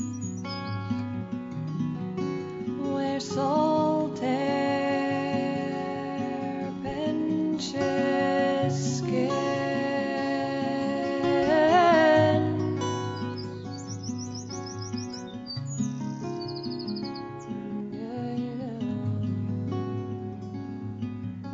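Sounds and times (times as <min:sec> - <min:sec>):
small bird singing bright rapid trills and chirps: 0:00.0 - 0:01.2, 0:02.9 - 0:18.0
sustained instrumental music: 0:00.0 - 0:21.5.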